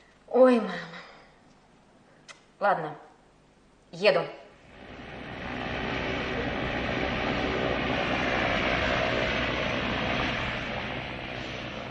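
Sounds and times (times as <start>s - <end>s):
speech: 0.4s - 1.0s, 2.6s - 3.1s, 3.9s - 4.4s
airplane roar in flight heard by passenger on board: 4.6s - 11.8s.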